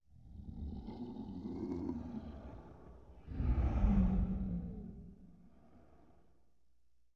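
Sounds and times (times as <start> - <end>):
deathly monster breathing vocals: 1.9 - 6.4.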